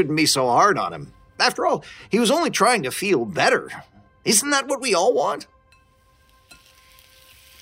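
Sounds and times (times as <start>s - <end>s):
speech: 0.0s - 5.5s
eggs sizzling and crackling in hot oil in a frying pan: 5.8s - 7.5s.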